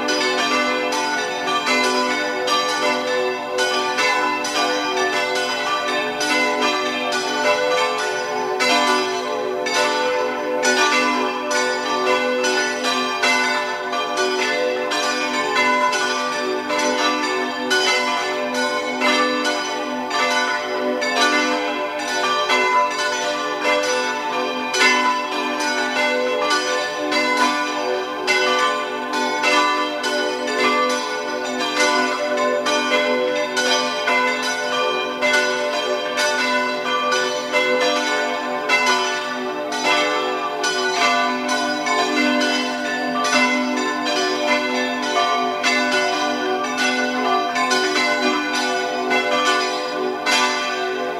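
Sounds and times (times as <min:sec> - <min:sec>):
several church bells ringing in a layered peal: 0:00.0 - 0:51.1.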